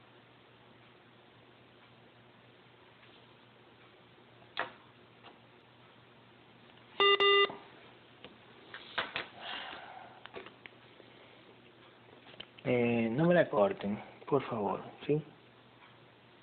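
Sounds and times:
electronic telephone beeps after a call is cut off: 7.0 - 7.6
speech: 12.7 - 15.4.

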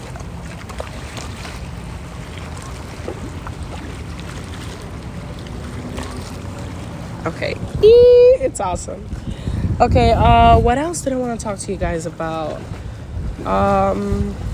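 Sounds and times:
water lapping and splashing against rocks: 0.0 - 14.5
wind noise on the microphone: 7.2 - 14.5
speech: 7.3 - 9.2, 9.8 - 12.8, 13.4 - 14.5.

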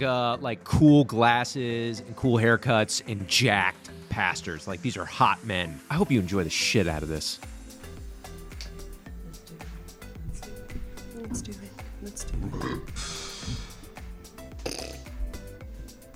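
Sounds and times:
speech: 0.0 - 7.6
person belching: 12.4 - 13.7, 14.5 - 15.1.

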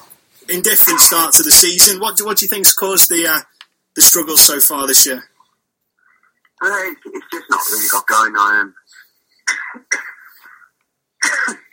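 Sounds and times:
speech: 0.5 - 5.3, 6.6 - 10.1, 11.2 - 11.6
person with a cold coughing: 6.9 - 8.0, 9.4 - 11.7.

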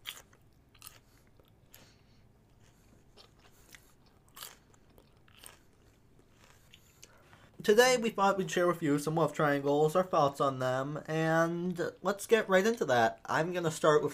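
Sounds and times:
close-up ASMR chewing and crunching: 0.0 - 7.4
speech: 7.6 - 14.1.

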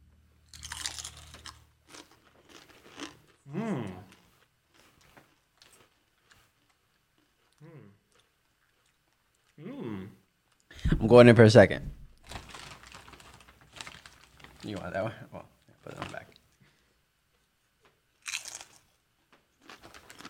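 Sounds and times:
chewing and crunching of food: 0.5 - 9.6, 12.2 - 20.2
short bursts of voiced sound: 3.5 - 4.1
speech: 11.0 - 12.0.

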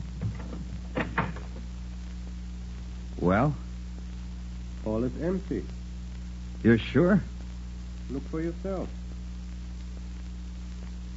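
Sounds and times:
low steady hum: 0.0 - 11.1
wooden door knocks and creaks: 0.1 - 1.6
speech: 3.2 - 3.6, 4.8 - 5.8, 6.6 - 7.3, 8.1 - 9.0.

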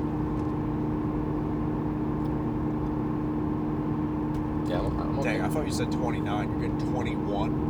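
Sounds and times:
car engine drone while cruising at highway speed: 0.0 - 7.6
road rumble inside a car: 0.0 - 7.6
speech: 5.2 - 7.6.

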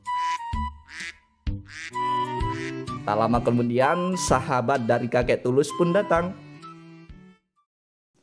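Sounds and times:
ducks on a farm quacking: 0.2 - 2.9
speech: 3.1 - 6.4.

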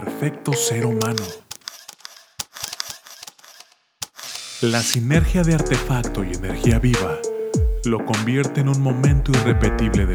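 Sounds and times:
speech: 0.2 - 1.4, 4.6 - 10.1
camera shutter clicks: 1.0 - 4.5.

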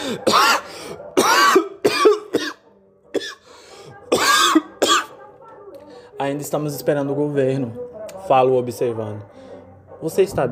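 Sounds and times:
person coughing in a harsh fit: 0.0 - 3.4, 4.1 - 5.2
speech: 0.1 - 0.4, 6.2 - 9.4, 10.0 - 10.4.

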